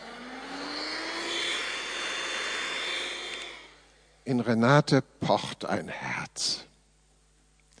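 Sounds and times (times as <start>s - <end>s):
motor humming with mechanical whir: 0.0s - 4.1s
speech: 4.3s - 6.7s.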